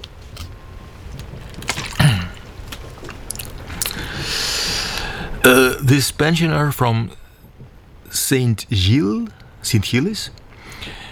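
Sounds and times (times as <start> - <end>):
small mouth and handling noises: 0.0 - 5.8
person sipping and swallowing water: 0.3 - 5.7
soft airy hiss: 2.3 - 11.1
speech: 5.4 - 7.2, 8.2 - 10.4.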